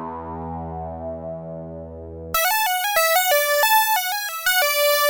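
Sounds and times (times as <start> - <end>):
Oberheim OB-8 synthesizer factory patch: 2.4 - 5.0.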